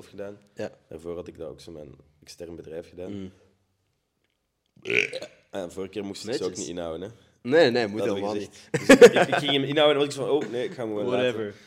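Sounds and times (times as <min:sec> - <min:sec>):
speech: 0:00.0 - 0:03.5, 0:04.8 - 0:11.6
person burping with a rough throaty rattle: 0:04.8 - 0:05.4
laughter: 0:08.8 - 0:11.0.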